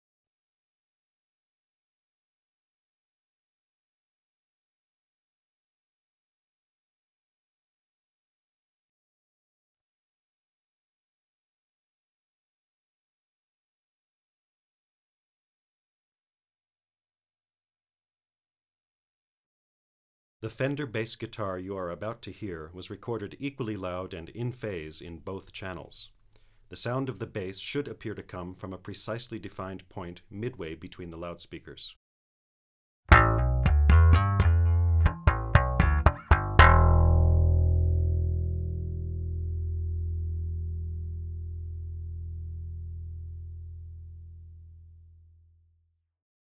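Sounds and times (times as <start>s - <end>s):
person speaking: 20.4s - 32.0s
Fender Precision bass with Rotosound round-wound strings: 33.1s - 45.6s.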